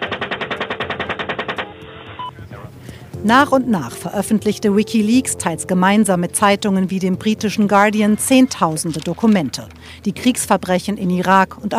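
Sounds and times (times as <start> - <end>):
rapid automatic gunfire from the air by US forces in Iraq: 0.0 - 1.7
speech: 3.2 - 11.7.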